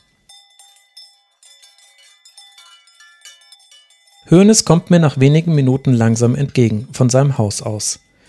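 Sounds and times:
cowbells on grazing cows clanking above Lake Tegernsee: 0:00.0 - 0:08.2
speech: 0:04.2 - 0:08.1.

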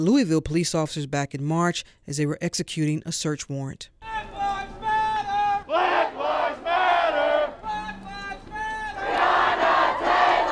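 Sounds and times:
speech: 0:00.0 - 0:04.0
large protest crowd chanting in unison outdoors: 0:04.4 - 0:10.5.

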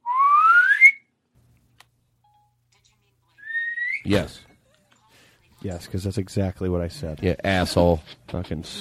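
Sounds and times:
rising whistle censoring a name: 0:00.0 - 0:01.1, 0:03.4 - 0:04.1
speech: 0:04.0 - 0:04.5, 0:05.6 - 0:08.7.

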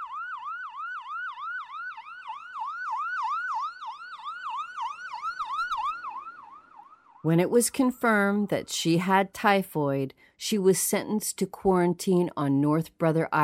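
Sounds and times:
ambulance siren yelping: 0:00.0 - 0:08.7
speech: 0:07.2 - 0:13.4.

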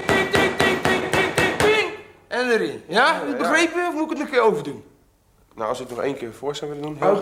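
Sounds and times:
hammer striking a nail into wood: 0:00.0 - 0:02.0
speech: 0:02.4 - 0:04.9, 0:05.6 - 0:07.1.

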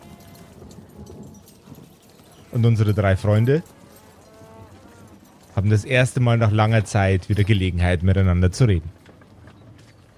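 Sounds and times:
goat and calf hooves clopping on hard street ground: 0:00.0 - 0:10.1
speech: 0:02.5 - 0:03.8, 0:05.6 - 0:09.0.

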